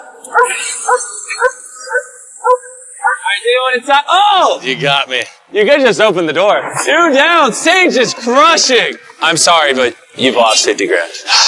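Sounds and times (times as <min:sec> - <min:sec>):
dog barking at a car: 0:00.0 - 0:03.3
speech: 0:00.3 - 0:01.6, 0:03.6 - 0:11.4.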